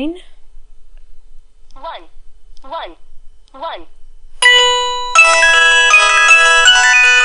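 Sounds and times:
speech: 0.0s - 0.3s, 1.9s - 3.0s, 3.6s - 4.0s
electronic phone ringtone: 4.4s - 7.2s.

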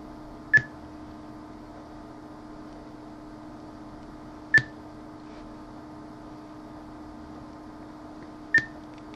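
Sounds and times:
quiet steady hum: 0.0s - 9.1s
electronic progress beeps rising in pitch: 0.5s - 0.8s, 4.5s - 4.8s, 8.5s - 8.8s.

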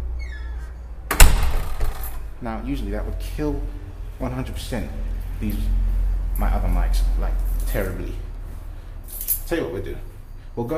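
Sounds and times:
door being closed from outside: 0.2s - 2.3s
speech: 2.4s - 8.3s, 9.5s - 10.7s.

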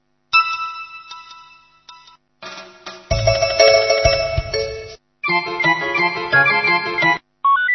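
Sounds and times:
bright electronic mobile phone ringtone melody with synthesized backing and bass: 0.4s - 2.2s, 3.1s - 7.2s.

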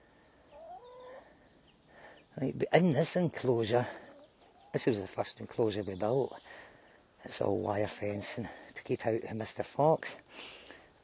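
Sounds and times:
young point-of-lay pullet hens clucking: 0.4s - 1.6s, 3.4s - 5.3s, 7.4s - 8.8s
speech: 2.4s - 4.0s, 4.7s - 10.6s.

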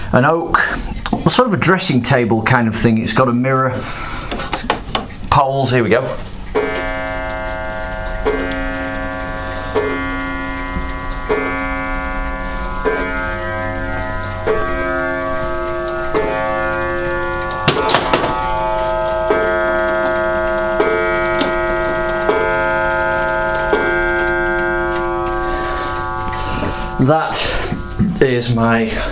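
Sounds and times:
speech: 0.2s - 4.5s, 5.4s - 6.3s, 27.1s - 27.6s, 28.4s - 29.1s
resonant metallic ring of chime clock: 6.0s - 29.1s
chime clock ticking: 6.3s - 29.1s.

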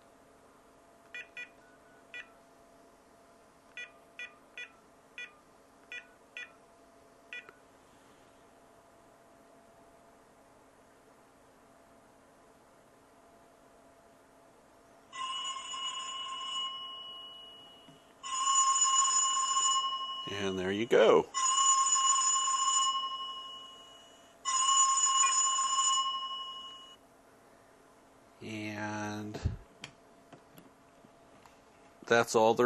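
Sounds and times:
faint steady hum: 0.0s - 32.6s
LG VX4650 cell phone ringer ringing: 3.8s - 6.6s, 15.1s - 27.0s
cell phone keypad dialing tones: 3.8s - 6.6s
speech: 20.3s - 21.5s, 32.1s - 32.6s.

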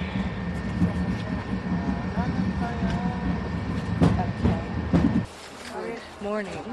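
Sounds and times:
faint high whine in a moving train carriage: 0.0s - 5.3s
steady low rumble inside a moving train carriage: 0.0s - 5.3s
speech: 6.2s - 6.7s.

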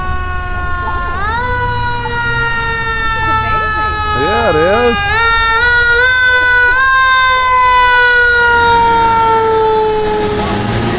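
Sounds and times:
fire truck siren wailing: 0.0s - 10.9s
low fire truck engine rumble: 0.0s - 10.9s.

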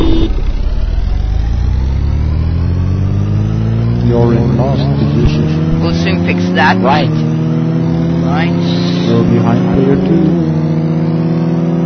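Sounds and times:
short electronic beep: 0.0s - 0.9s
racing video game car engines idling at the starting line: 0.0s - 11.8s
speech: 6.6s - 7.3s, 8.4s - 10.6s.

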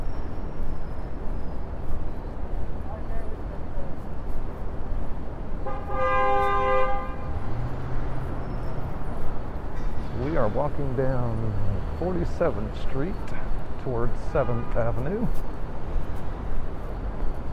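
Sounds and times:
city street traffic rumble on 47th Street: 0.0s - 17.5s
car horn blast: 5.6s - 7.3s
vehicle engine drone as a vehicle moves off: 6.9s - 17.5s
speech: 10.6s - 15.6s.

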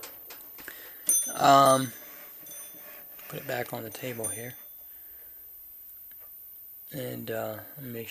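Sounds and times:
small battery-powered brass alarm clock bell ringing: 0.7s - 5.4s
speech: 1.4s - 2.0s, 3.3s - 4.6s, 6.9s - 8.0s.

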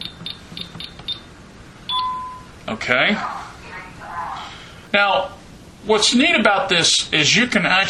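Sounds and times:
short high-pitched beeps from a security alarm keypad: 0.0s - 1.3s, 1.9s - 2.5s
long confirming tone from a security alarm keypad: 1.9s - 2.6s
speech: 2.7s - 3.4s, 4.9s - 7.8s.

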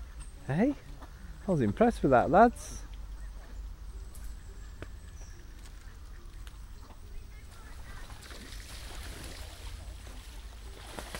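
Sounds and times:
speech: 0.5s - 0.9s, 1.5s - 2.9s
ducks splashing about in water outdoors: 7.5s - 11.1s.

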